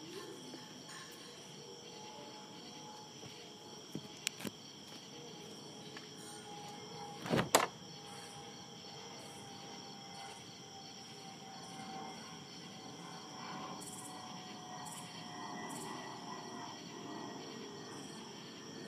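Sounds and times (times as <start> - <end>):
crickets chirping: 0.0 - 18.8
sharp clicks or knocks: 7.2 - 7.7.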